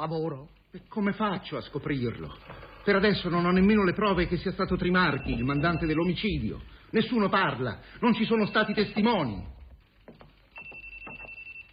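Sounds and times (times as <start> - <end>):
speech: 0.0 - 9.6
telephone ringing: 2.0 - 9.6, 10.5 - 11.7.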